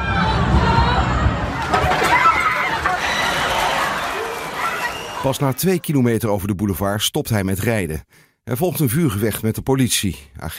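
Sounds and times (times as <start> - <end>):
panicked crowd's agitated voices on a promenade: 0.0 - 5.9
speech: 5.2 - 10.5.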